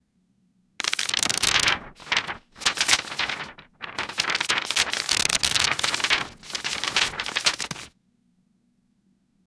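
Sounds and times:
paper pages falling: 0:00.8 - 0:07.9.

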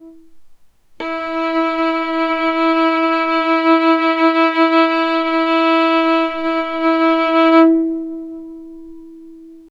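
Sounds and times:
violin pizzicato: 0:01.0 - 0:08.8.

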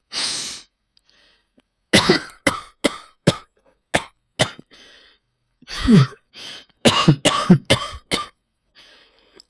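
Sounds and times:
crunchy cough: 0:02.0 - 0:04.7, 0:05.7 - 0:06.2, 0:06.9 - 0:08.4.

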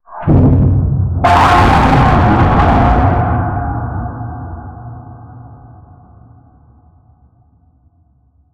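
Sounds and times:
distorted monstrous raspy sound: 0:01.2 - 0:04.3.

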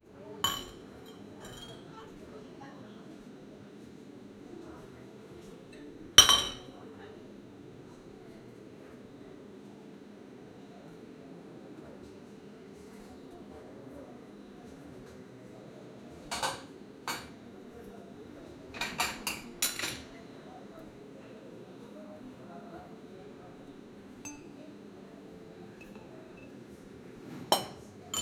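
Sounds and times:
cafe background noise: 0:00.0 - 0:28.1.

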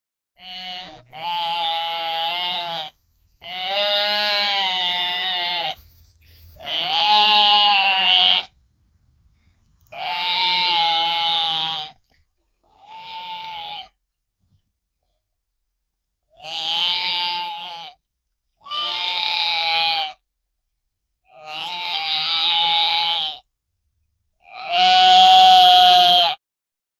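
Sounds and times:
goat bleating baa: 0:00.4 - 0:05.8, 0:06.6 - 0:08.5, 0:09.9 - 0:12.0, 0:12.8 - 0:13.9, 0:16.4 - 0:18.0, 0:18.6 - 0:20.2, 0:21.4 - 0:23.4, 0:24.5 - 0:26.4.

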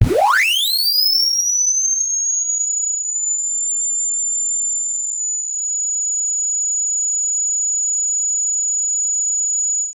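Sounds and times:
bright high-pitched laser: 0:00.0 - 0:01.4.

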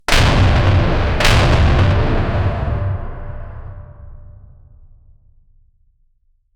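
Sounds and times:
cinematic heavy metal music: 0:00.1 - 0:04.6.

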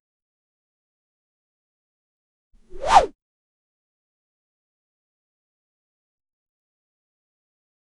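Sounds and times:
quick whoosh of a sword being swung: 0:02.7 - 0:03.1.

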